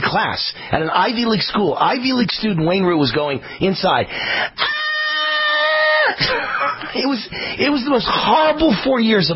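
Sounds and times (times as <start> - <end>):
speech: 0.1 - 4.8, 6.1 - 9.3
man screaming in frustration: 4.6 - 6.2.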